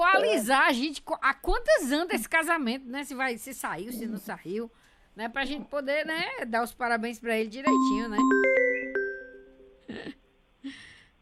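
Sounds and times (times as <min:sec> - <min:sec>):
speech: 0:00.0 - 0:08.5
phone ringing with a short electronic chime: 0:07.7 - 0:09.8.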